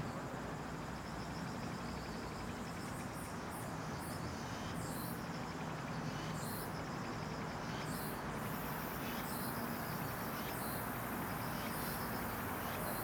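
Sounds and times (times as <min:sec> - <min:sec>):
continuous low hum of traffic in Seoul: 0:00.2 - 0:13.0
cicada buzzing in a high pulsed drone at an apartment complex in Seoul: 0:04.4 - 0:13.0.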